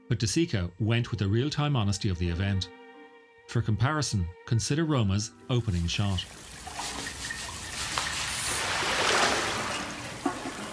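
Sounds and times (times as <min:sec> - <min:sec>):
speech: 0:00.1 - 0:02.8, 0:03.5 - 0:07.0
water splashing and trickling across floor tiles: 0:05.6 - 0:10.7.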